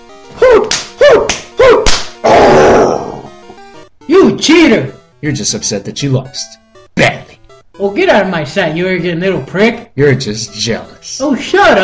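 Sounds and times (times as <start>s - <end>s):
wet whooshing slaps of a video game attack effect: 0.7s - 2.2s
speech: 4.4s - 7.2s, 7.8s - 11.8s.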